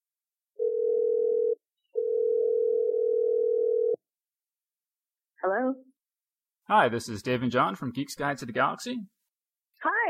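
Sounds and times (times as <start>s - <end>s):
low telephone dial tone while placing a call: 0.6s - 4.0s
speech: 5.4s - 5.9s, 6.7s - 9.2s, 9.8s - 10.0s.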